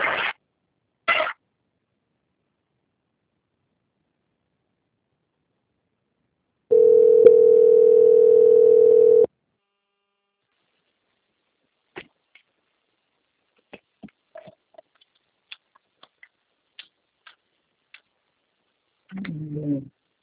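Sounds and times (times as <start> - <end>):
steady single-pitch telephone line tone while a call is transferred: 6.7 - 9.3.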